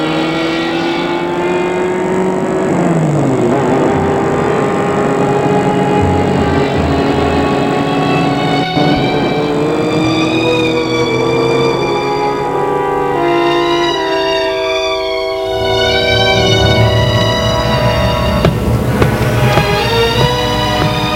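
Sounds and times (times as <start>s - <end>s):
car engine humming while driving: 0.0s - 21.1s.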